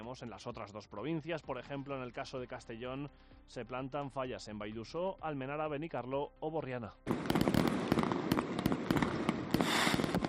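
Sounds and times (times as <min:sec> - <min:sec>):
speech: 0:00.1 - 0:07.4
long dense string of firecrackers crackling: 0:07.1 - 0:10.2.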